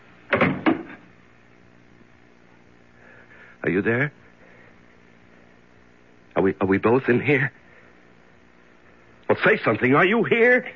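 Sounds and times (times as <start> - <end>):
door pulled shut with solid thuds: 0.3 - 1.0
speech: 3.6 - 4.2, 6.4 - 7.6, 9.4 - 10.7.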